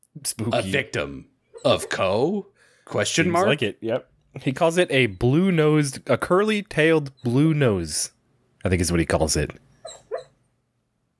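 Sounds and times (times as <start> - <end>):
speech: 0.2 - 10.0
sleeping dog whimpering: 1.6 - 2.1, 9.8 - 10.4.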